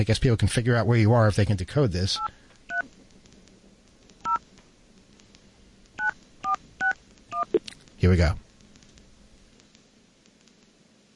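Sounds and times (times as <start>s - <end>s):
speech: 0.0s - 2.4s, 8.0s - 8.4s
faint hiss: 0.0s - 11.1s
touch-tone beeps from a phone keypad: 6.0s - 7.6s.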